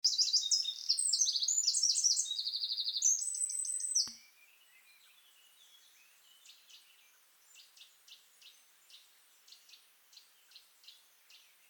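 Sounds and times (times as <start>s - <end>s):
Eurasian wren song, Troglodytes troglodytes: 0.0s - 4.6s
single click: 4.0s - 4.2s.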